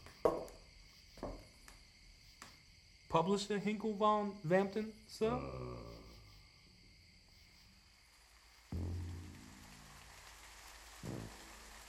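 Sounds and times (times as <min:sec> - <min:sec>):
speech: 0:03.1 - 0:05.9
steady rain falling on a wet street in Harlem: 0:08.1 - 0:11.8.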